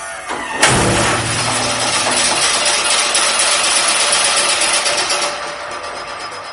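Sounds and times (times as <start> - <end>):
NASA test launcher firing a harpoon: 0.6 - 3.0
sustained mechanical rush and whine of test launcher: 0.6 - 6.5.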